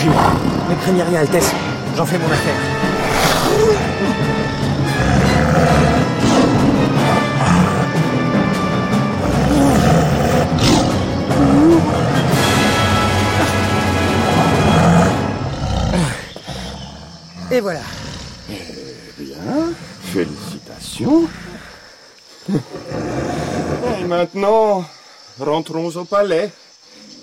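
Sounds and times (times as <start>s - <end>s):
tiger roaring: 0.0s - 0.9s, 2.8s - 19.1s, 22.6s - 24.2s
speech: 0.0s - 2.8s, 3.6s - 4.4s, 17.5s - 18.0s, 19.5s - 20.4s, 21.0s - 21.4s, 24.1s - 26.6s.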